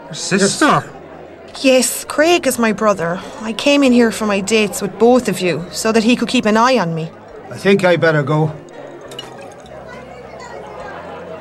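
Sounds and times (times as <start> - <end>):
faint voices murmuring: 0.0 - 11.4
speech: 0.1 - 1.0, 1.6 - 8.6
drink fizzing from a dissolving pill: 8.6 - 10.0.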